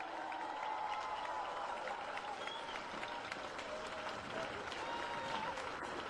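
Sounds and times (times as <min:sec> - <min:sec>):
scattered whoops and shouts from rally crowd: 0:00.0 - 0:05.8
large outdoor rally crowd cheering and applauding: 0:00.0 - 0:06.0.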